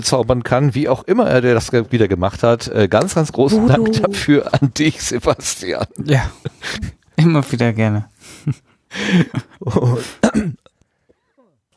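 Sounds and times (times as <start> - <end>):
speech: 0.0 - 10.7
person clearing throat: 3.5 - 4.4, 9.9 - 10.7
laughter: 3.5 - 4.7
person coughing in rough raspy bursts: 10.0 - 10.6.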